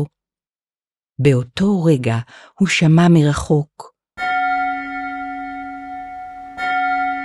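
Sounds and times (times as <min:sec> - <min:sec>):
speech: 0:01.2 - 0:03.9
large bell tolling with a long ringing hum: 0:04.2 - 0:07.2.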